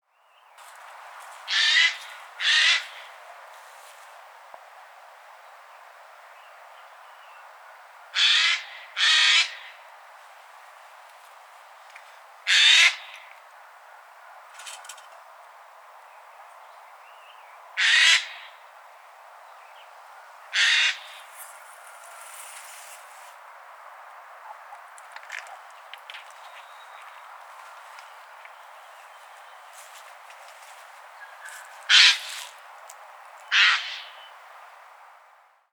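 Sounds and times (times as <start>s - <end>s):
Garrulus glandarius calling: 1.5s - 3.2s, 8.2s - 9.8s, 12.5s - 13.3s, 17.8s - 18.6s, 20.5s - 21.3s, 31.2s - 32.5s, 33.5s - 34.3s.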